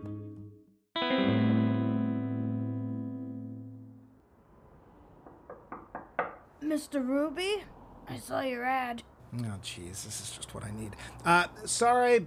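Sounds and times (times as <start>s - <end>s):
loud sustained electronic chord: 1.0s - 4.1s
sharp knocks on a door: 5.2s - 6.4s
speech: 6.7s - 12.2s.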